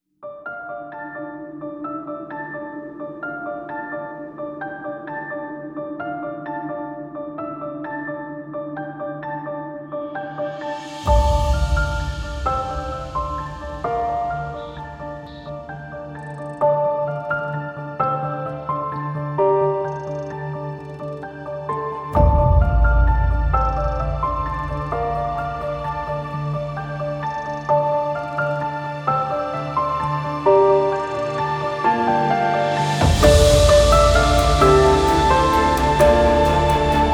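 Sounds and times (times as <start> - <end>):
cinematic melody: 10.6 - 37.1.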